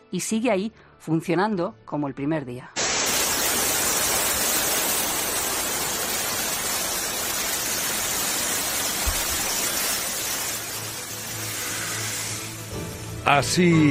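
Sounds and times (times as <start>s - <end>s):
speech: 0.1s - 2.8s, 13.3s - 13.9s
water pouring out of a Roman dam: 2.8s - 12.8s.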